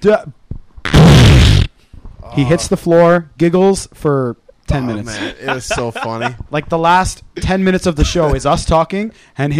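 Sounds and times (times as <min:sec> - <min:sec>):
speech: 0:00.0 - 0:00.4, 0:02.4 - 0:09.5
loud buzzy fart against a microphone: 0:00.8 - 0:01.7
short vocal sound: 0:02.2 - 0:02.7
laughter: 0:04.8 - 0:06.4, 0:08.0 - 0:08.5.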